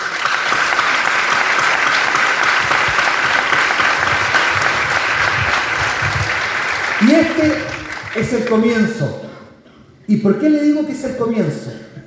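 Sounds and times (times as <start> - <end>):
large audience applause of thanks: 0.0 - 8.7
speech: 7.1 - 9.2, 10.1 - 11.9.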